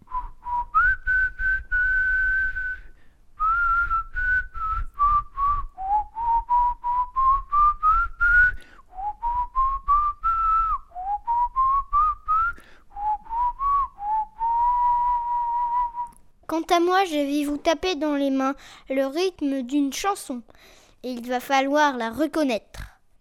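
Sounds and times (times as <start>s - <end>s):
person whistling a lively melody: 0.0s - 16.2s
speech: 16.7s - 22.8s.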